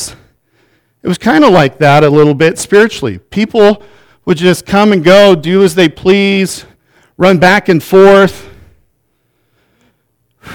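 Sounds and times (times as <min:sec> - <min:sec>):
heavy breath rushing into the microphone: 0:00.0 - 0:01.0, 0:03.8 - 0:04.2, 0:06.6 - 0:07.2, 0:08.4 - 0:10.5
speech: 0:01.0 - 0:08.5.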